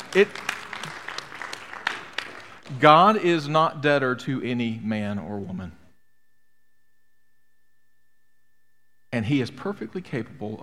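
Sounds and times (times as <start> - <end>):
audience clapping: 0.0 - 3.5
speech: 0.1 - 0.6, 2.7 - 5.8, 9.2 - 10.6.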